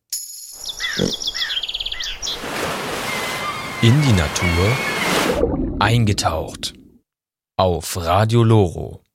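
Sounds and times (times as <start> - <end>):
common swifts screaming calls: 0.7 - 5.4
speech: 1.0 - 1.3, 3.8 - 6.8, 7.6 - 9.0.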